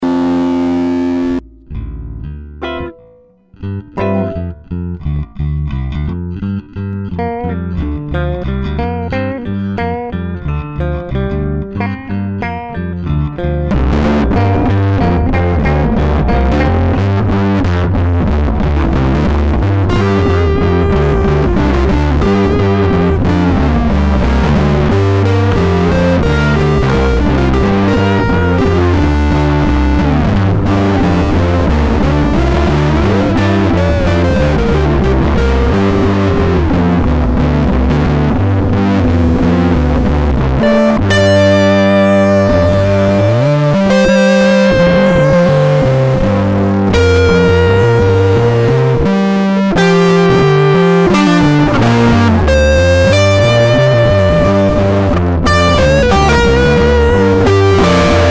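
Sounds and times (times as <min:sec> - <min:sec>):
fuzz guitar: 0:00.0 - 0:58.2.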